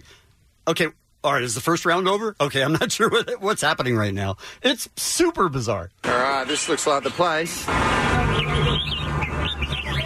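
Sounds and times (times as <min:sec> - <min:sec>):
speech: 0:00.7 - 0:10.0
songbirds singing in a singing competition: 0:06.5 - 0:10.0.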